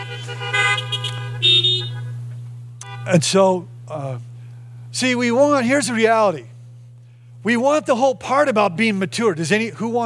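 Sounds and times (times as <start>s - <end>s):
car horns honking: 0.0s - 3.4s
steady low hum: 0.0s - 10.0s
speech: 3.1s - 4.3s, 4.9s - 6.5s, 7.4s - 10.0s.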